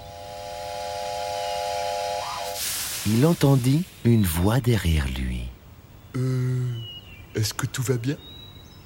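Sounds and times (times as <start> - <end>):
steady shrill whistling tone: 0.0 - 2.6
loud burst of hissing steam: 0.0 - 4.4
speech: 3.0 - 8.3.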